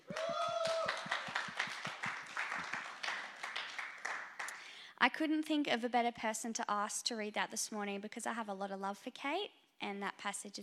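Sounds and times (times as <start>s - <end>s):
small audience clapping after a reading at a morning gathering: 0.0s - 4.7s
speech: 5.0s - 10.6s.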